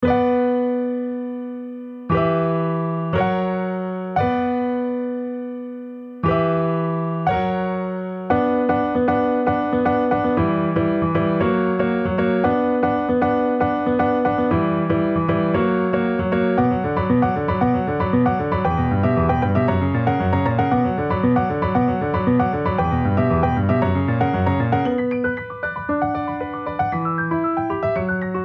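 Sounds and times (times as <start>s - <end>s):
piano: 0.0s - 28.4s.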